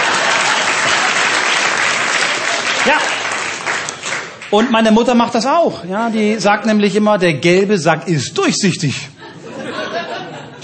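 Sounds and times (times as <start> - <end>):
laughter: 0.0 - 1.3, 9.2 - 10.6
audience applause: 0.0 - 4.8
speech: 2.9 - 3.2, 4.5 - 9.2.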